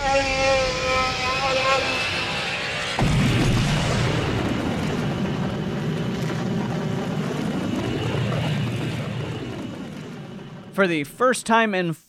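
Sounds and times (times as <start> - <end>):
roaring rush with swooping warbling tones: 0.0 - 10.7
spaceship hyperdrive whining engine hum: 0.0 - 10.8
spaceship hyperdrive jump boom: 0.2 - 10.7
speech: 10.8 - 12.0.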